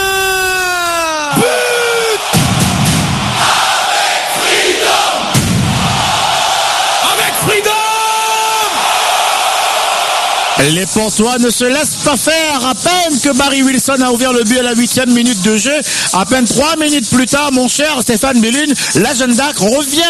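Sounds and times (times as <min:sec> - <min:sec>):
football supporters cheering and shouting in a stadium during a match: 0:00.0 - 0:14.6
speech: 0:10.6 - 0:20.0.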